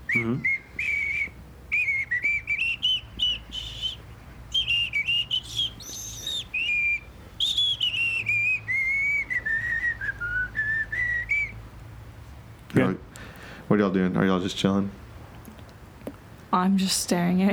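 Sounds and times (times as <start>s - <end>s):
person whistling a wandering tune while pumping gas: 0.0s - 11.6s
low steady hum: 0.0s - 17.5s
speech: 0.1s - 0.6s, 13.7s - 15.0s, 16.5s - 17.5s.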